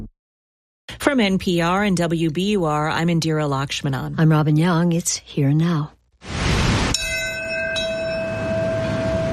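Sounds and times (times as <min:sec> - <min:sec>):
speech: 0:01.1 - 0:06.0
single large memorial bell tolling: 0:07.0 - 0:09.3.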